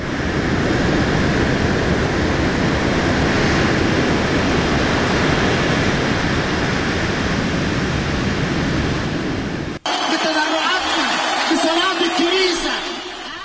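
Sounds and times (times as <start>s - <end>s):
heavy ocean surf crashing on the coast: 0.0s - 13.4s
voices: 9.9s - 13.4s.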